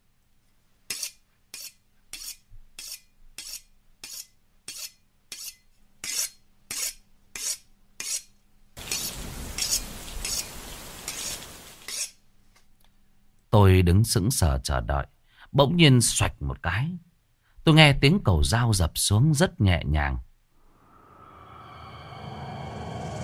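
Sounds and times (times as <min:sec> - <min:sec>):
butcher's knife sharpened on a whetstone: 0:00.9 - 0:12.2
speech: 0:13.6 - 0:17.1, 0:17.7 - 0:20.3.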